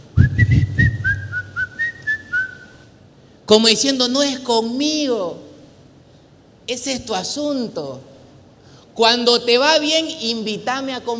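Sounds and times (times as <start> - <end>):
person whistling a short tune: 0.2 - 2.8
speech: 3.5 - 5.4, 6.7 - 8.1, 9.0 - 11.1.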